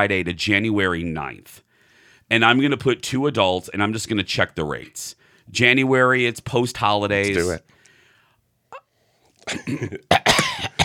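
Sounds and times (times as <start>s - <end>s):
speech: 0.0s - 1.7s, 2.3s - 7.8s, 9.5s - 10.4s
harsh bursting coughs: 9.4s - 10.8s.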